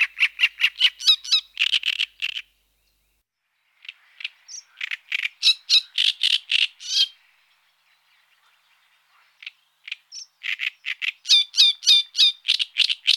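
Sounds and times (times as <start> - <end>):
great reed warbler song of harsh grating croaks: 0.0 - 13.1.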